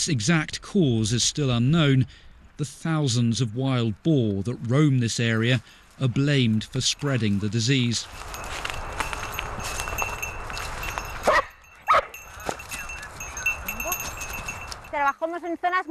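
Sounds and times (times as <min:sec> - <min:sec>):
speech: 0:00.0 - 0:08.7, 0:15.2 - 0:15.8
steady outdoor noise: 0:00.0 - 0:15.8
dog barking: 0:11.3 - 0:12.2.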